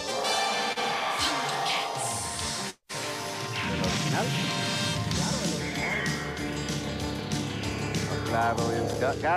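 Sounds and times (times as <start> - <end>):
energetic animated series intro theme music: 0.0 - 9.3
voices mixed into theme music: 5.1 - 9.3.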